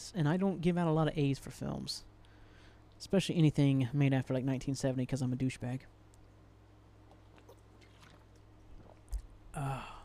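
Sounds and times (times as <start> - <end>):
speech: 0.1 - 2.1, 3.0 - 6.0, 9.6 - 9.9
water being poured: 7.1 - 9.2.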